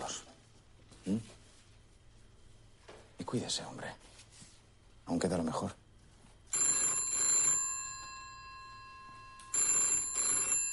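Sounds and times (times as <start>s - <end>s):
speech: 1.0s - 1.4s, 3.3s - 4.1s, 5.1s - 5.8s
telephone bell ringing: 6.5s - 10.7s.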